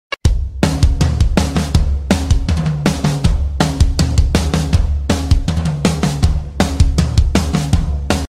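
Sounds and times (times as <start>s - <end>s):
rhythmic drums: 0.1s - 8.2s.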